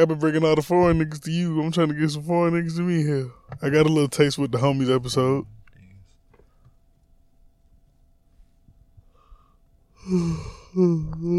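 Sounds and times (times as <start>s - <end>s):
speech: 0.0s - 5.6s, 10.0s - 11.3s
soft yawn: 10.0s - 11.3s.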